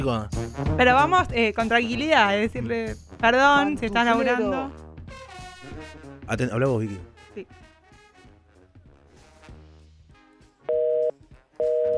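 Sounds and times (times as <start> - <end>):
speech: 0.0 - 5.2, 6.3 - 7.6
telephone busy signal from a phone left off the hook: 10.7 - 11.9.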